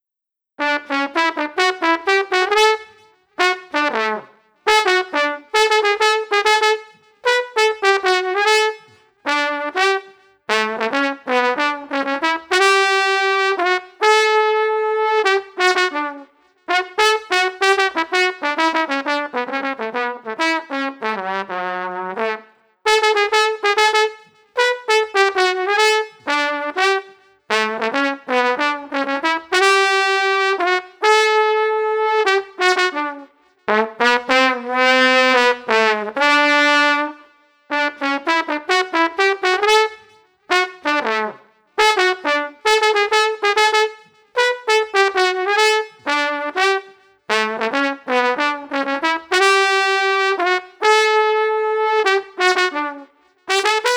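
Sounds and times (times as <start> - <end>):
upbeat street trumpet music: 0.6 - 53.9.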